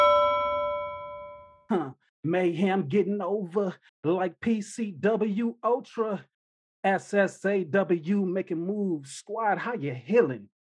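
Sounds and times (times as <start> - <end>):
pot bell struck and ringing: 0.0 - 1.6
speech: 1.7 - 10.5.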